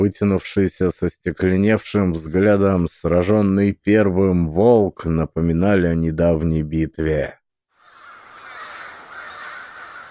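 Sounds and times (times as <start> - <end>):
speech: 0.0 - 7.4
many crows cawing around a snowy forest clearing: 7.8 - 10.0.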